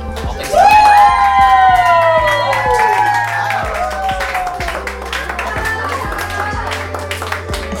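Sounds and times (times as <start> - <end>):
roomful of people at a house party cheering at election results: 0.0 - 7.7
scattered clapping: 0.0 - 7.7
excited shouting: 0.4 - 7.0.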